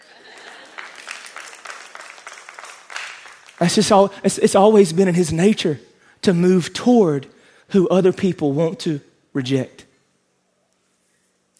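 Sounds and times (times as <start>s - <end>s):
congregation applauding in a large room: 0.0s - 5.0s
speech: 3.6s - 9.8s.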